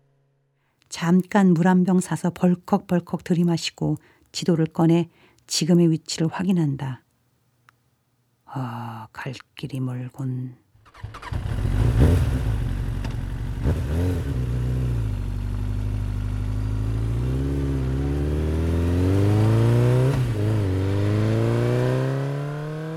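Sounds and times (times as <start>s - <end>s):
speech: 1.0s - 7.0s, 8.5s - 11.4s
motorcycle engine starting and revving: 10.8s - 22.9s.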